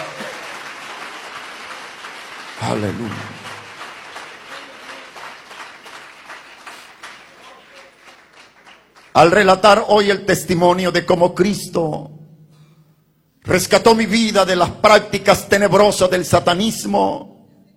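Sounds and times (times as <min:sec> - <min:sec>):
church audience applauding: 0:00.0 - 0:09.5
speech: 0:02.6 - 0:03.5, 0:09.2 - 0:12.1, 0:13.5 - 0:17.3.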